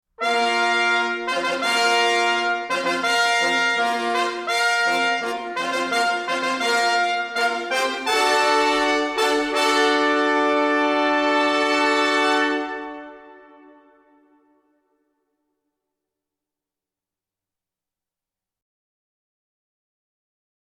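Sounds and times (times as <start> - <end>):
orchestra and choir music: 0.2 - 14.3
heraldic trumpets: 0.2 - 14.7.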